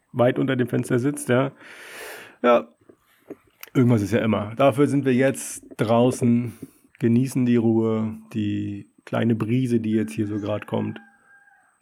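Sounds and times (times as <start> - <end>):
speech: 0.2 - 11.1
rooster crowing: 10.0 - 11.8.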